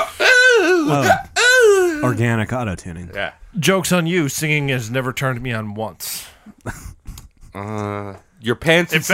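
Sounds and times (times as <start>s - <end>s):
voice imitating hiccups with high-pitched yelping bursts: 0.0s - 2.0s
speech: 0.9s - 1.2s, 2.1s - 7.0s, 7.6s - 9.1s.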